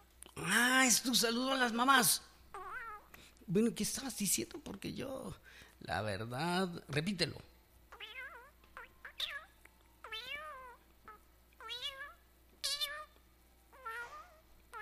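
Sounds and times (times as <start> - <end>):
speech: 0.4 - 2.3, 3.5 - 7.5
cat meowing: 2.6 - 3.1, 7.9 - 14.7.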